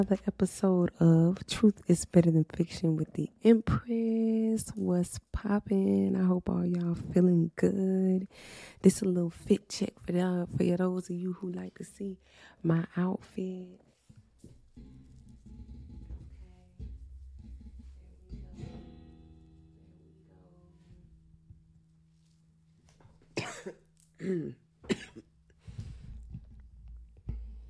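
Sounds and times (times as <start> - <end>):
speech: 0.0 - 13.8, 23.6 - 25.1
harsh raspy cough fit: 23.4 - 25.3.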